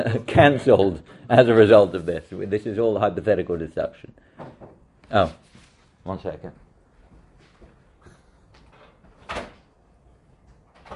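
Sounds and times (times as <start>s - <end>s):
speech: 0.0s - 6.6s
door opening as someone comes in: 8.6s - 9.8s, 10.4s - 10.9s
door thump and rattle: 8.8s - 9.7s.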